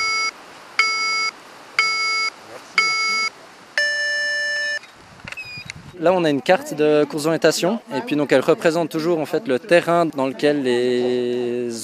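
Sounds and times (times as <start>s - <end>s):
electronic beeps signaling the start of an orienteering race: 0.0s - 5.7s
speech: 6.0s - 11.8s.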